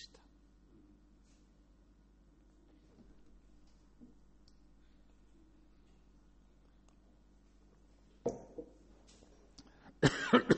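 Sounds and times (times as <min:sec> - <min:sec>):
person coughing: 0:10.0 - 0:10.5.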